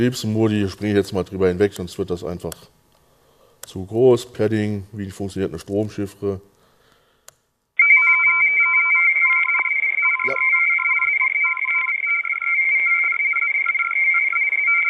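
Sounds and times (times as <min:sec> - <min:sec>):
speech: 0:00.0 - 0:02.8, 0:03.7 - 0:06.5
Morse code radio message sent from a submarine: 0:07.8 - 0:14.8
steady high tone: 0:07.8 - 0:14.8.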